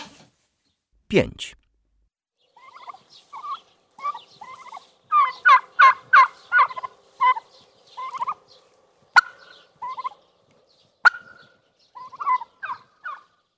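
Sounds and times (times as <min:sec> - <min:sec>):
speech: 0:01.1 - 0:01.6
turkey gobbling: 0:02.6 - 0:08.5, 0:09.1 - 0:10.2, 0:11.0 - 0:13.3.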